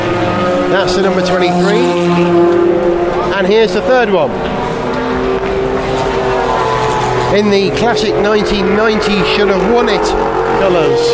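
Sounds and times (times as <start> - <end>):
Ferrari and Aston Martin race cars roaring past during a race: 0.0 - 11.1
speech: 0.8 - 4.6, 7.3 - 11.1.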